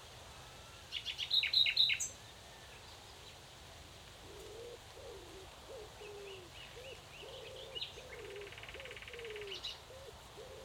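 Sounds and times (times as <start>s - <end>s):
common nightingale Luscinia megarhynchos singing: 0.9s - 3.0s, 5.9s - 10.6s.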